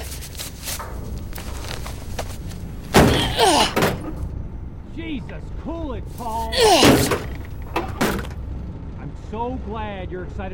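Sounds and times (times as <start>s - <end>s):
wooden door creaking rattle: 0.8s - 4.2s, 6.7s - 8.4s
body ramming against a wooden door: 2.9s - 4.2s, 6.6s - 8.3s
speech: 5.1s - 7.2s, 9.3s - 10.5s.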